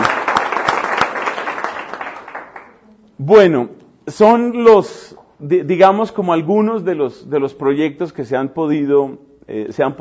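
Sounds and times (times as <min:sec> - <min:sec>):
audience applause at a community meeting: 0:00.0 - 0:02.8
speech: 0:03.2 - 0:09.9.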